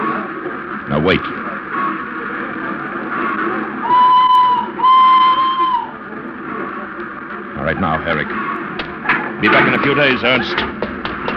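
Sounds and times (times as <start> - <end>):
low rumble of station noise: 0.0 - 11.3
speech: 0.9 - 1.4, 7.7 - 8.5, 9.4 - 10.7
train whistle blasts at station: 3.8 - 6.0.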